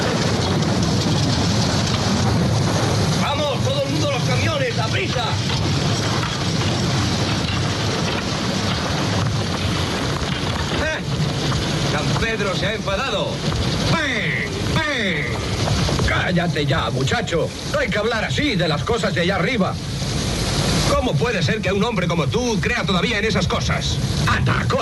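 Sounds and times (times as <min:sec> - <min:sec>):
heavy rain pouring in a film scene: 0:00.0 - 0:24.8
voices of prisoners building a road: 0:03.0 - 0:08.4, 0:10.6 - 0:24.8
speech: 0:12.6 - 0:13.5, 0:16.3 - 0:19.9, 0:21.0 - 0:24.8.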